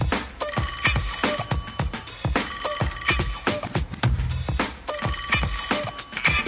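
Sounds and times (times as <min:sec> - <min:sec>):
phone electronic ringtone: 0:00.4 - 0:03.9, 0:04.8 - 0:06.4.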